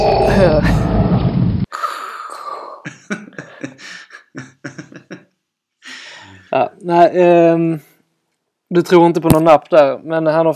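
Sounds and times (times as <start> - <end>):
speech: 0.4 - 1.0, 6.6 - 7.9, 8.7 - 10.5
heavy breathing through a helmet: 1.7 - 5.1, 5.8 - 6.6
laughter: 2.9 - 5.3.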